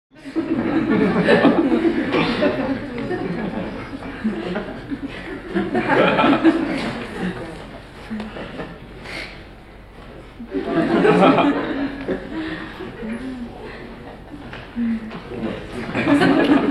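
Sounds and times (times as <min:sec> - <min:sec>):
crowd giggling indoors: 0:00.2 - 0:09.4, 0:10.4 - 0:16.6.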